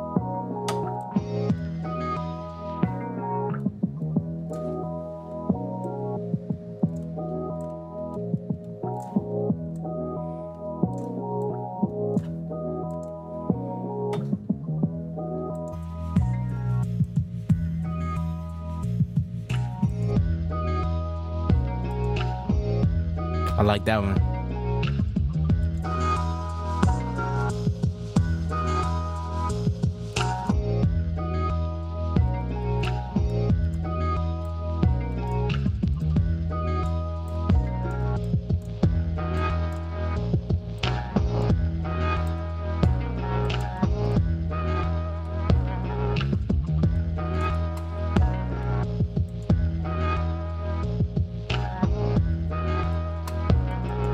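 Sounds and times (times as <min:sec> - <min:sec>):
loud dense heavily distorted music with fuzzy low end: 0:00.0 - 0:54.1
speech: 0:23.7 - 0:24.3.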